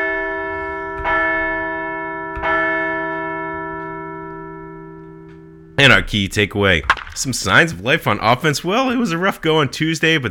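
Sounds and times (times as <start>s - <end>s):
resonant bell ringing: 0.0s - 5.8s
speech: 5.8s - 10.2s.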